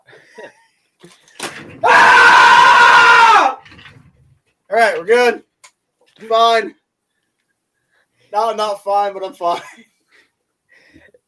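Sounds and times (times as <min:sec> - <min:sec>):
speech: 0:00.4 - 0:01.9, 0:04.8 - 0:05.4, 0:06.2 - 0:06.8, 0:08.3 - 0:09.9
person screaming: 0:01.8 - 0:03.6.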